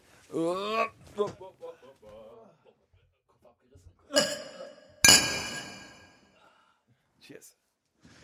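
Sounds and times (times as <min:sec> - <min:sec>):
speech: 0:00.3 - 0:01.3
glasses clinking in a toast: 0:04.2 - 0:06.2.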